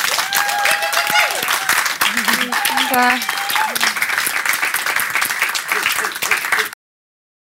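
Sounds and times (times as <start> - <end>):
excited whoops and cheers from audience: 0.0 - 4.0
loud dense audience applause: 0.0 - 6.8
laughter: 1.0 - 4.2, 5.2 - 6.8
speech: 2.9 - 3.3.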